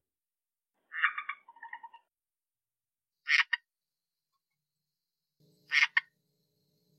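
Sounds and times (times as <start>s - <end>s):
red-eyed tree frog calling: 0.9s - 2.1s, 3.2s - 3.7s, 5.7s - 6.2s.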